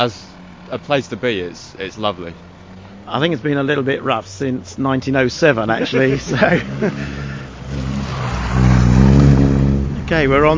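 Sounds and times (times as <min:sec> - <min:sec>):
speech: 0:00.0 - 0:02.5, 0:03.1 - 0:07.3, 0:10.1 - 0:10.5
Mazda MX-5 sports car engines revving: 0:00.0 - 0:10.5
laughter: 0:05.6 - 0:07.5.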